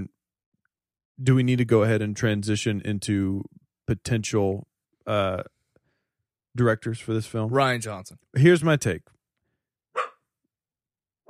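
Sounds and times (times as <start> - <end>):
speech: 1.2 - 5.6, 6.6 - 9.2
male dog barking: 10.0 - 10.2.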